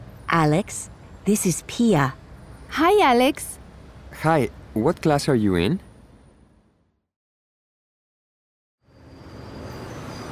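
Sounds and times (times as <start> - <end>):
bus pulling up at a bus stop with engine rumble and hiss: 0.0 - 6.4, 8.9 - 10.3
street noise: 0.0 - 6.9, 8.8 - 10.3
speech: 0.3 - 5.9.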